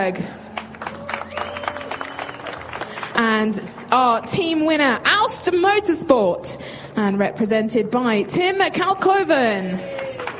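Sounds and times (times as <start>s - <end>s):
speech: 0.0s - 0.4s, 3.2s - 10.1s
applause from a crowd at a motorsport prize-giving ceremony: 0.5s - 3.9s, 9.8s - 10.3s.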